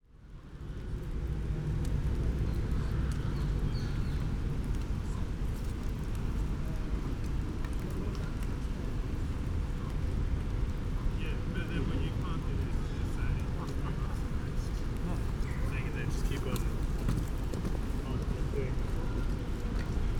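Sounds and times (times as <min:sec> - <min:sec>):
rain: 0:00.0 - 0:20.1
people passing: 0:11.2 - 0:20.1.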